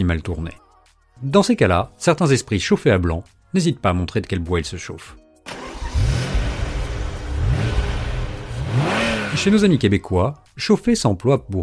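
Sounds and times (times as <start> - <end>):
speech: 0.0 - 0.6, 1.2 - 5.2, 9.4 - 11.6
car engine starting and revving: 5.5 - 10.0.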